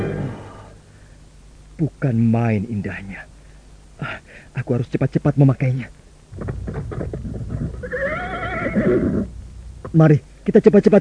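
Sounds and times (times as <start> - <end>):
speech: 1.8 - 3.3, 4.0 - 7.2, 8.7 - 10.9
horse hoof thuds: 6.3 - 7.9
strong horse neighing in a cave: 6.9 - 9.4.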